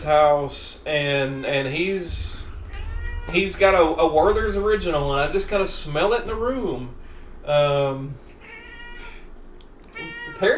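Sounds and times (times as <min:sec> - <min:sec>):
speech: 0:00.0 - 0:02.4, 0:03.3 - 0:08.2, 0:10.0 - 0:10.5
low hum: 0:00.0 - 0:10.5
cat meowing: 0:08.4 - 0:09.2, 0:10.0 - 0:10.5.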